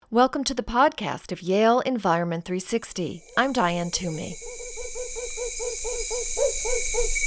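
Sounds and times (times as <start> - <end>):
speech: 0.1 - 4.7
constant high hiss: 2.7 - 7.2
Camiguin hawk owl calling: 3.2 - 7.2.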